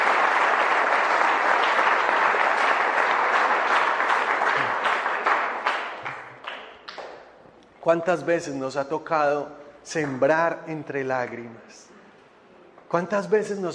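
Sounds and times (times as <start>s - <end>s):
room full of people applauding: 0.0s - 7.2s
speech: 7.9s - 11.9s, 12.9s - 13.7s.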